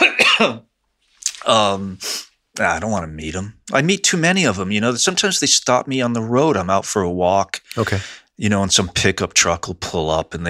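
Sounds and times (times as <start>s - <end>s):
person clearing throat: 0.0s - 0.7s
person coughing: 0.0s - 0.7s
speech: 0.4s - 0.7s, 1.4s - 10.4s.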